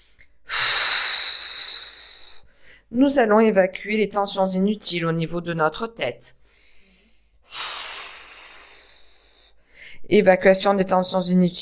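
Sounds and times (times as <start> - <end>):
slow exhalation after relaxing the muscles in a relaxation exercise: 0.0 - 2.9, 6.4 - 10.0
speech: 2.9 - 6.4, 10.1 - 11.6.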